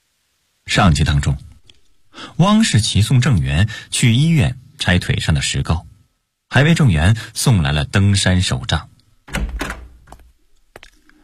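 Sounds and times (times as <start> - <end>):
speech: 0.7 - 1.5, 2.4 - 5.9, 6.5 - 9.4
door being pushed open: 9.3 - 10.3.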